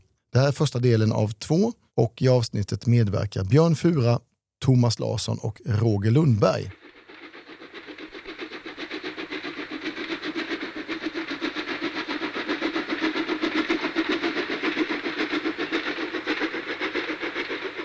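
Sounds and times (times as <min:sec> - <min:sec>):
speech: 0:00.4 - 0:06.8
train wheels clickety-clack on rails: 0:05.7 - 0:17.8.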